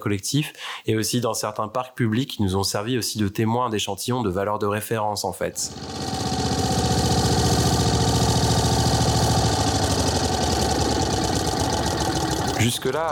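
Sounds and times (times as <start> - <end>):
speech: 0.0 - 6.3, 12.6 - 13.1
lawn mower engine running: 5.6 - 13.1.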